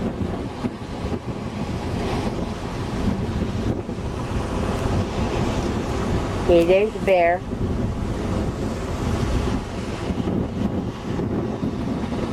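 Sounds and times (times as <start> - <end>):
gusty wind buffeting the microphone: 0.0 - 12.3
ocean waves crashing on shore: 0.0 - 12.3
speech: 6.5 - 7.7.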